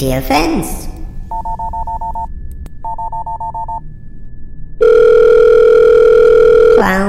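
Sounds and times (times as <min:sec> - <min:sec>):
rapid evenly pulsed telephone dialing beeps: 0:01.3 - 0:03.8, 0:04.8 - 0:06.8
loud steady telephone dial tone: 0:04.8 - 0:06.8.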